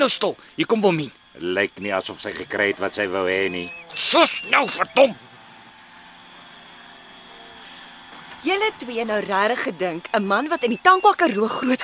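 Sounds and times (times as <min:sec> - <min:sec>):
speech: 0:00.0 - 0:05.3, 0:08.4 - 0:11.8
drone propellers buzzing: 0:00.0 - 0:11.8.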